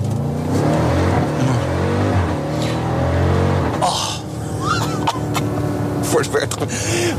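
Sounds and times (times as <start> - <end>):
supercharged V8 SUV engine revving: 0.0 - 7.1
speech: 6.2 - 7.1.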